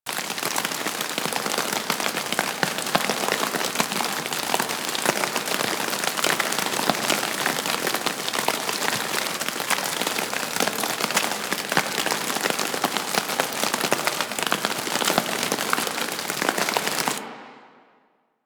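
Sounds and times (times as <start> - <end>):
rain on a suit outdoors: 0.0 - 17.2.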